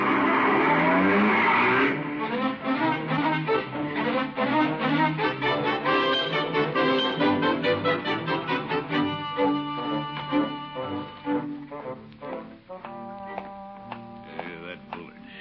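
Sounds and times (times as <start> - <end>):
car tires skidding while driving off: 0.0 - 11.7.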